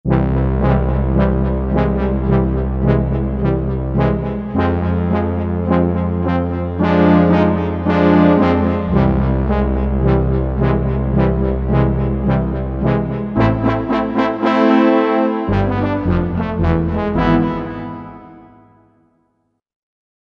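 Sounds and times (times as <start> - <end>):
stereo brass on a Korg MSC-1S: 0.0 - 19.2.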